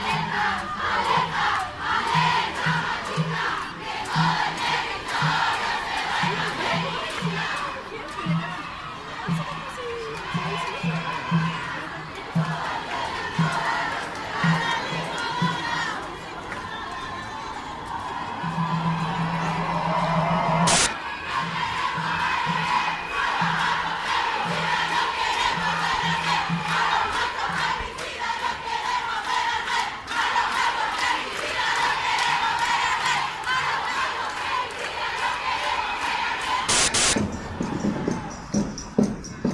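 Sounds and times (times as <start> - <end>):
outdoor protest march crowd at the courthouse chanting slogans: 0.0 - 38.6.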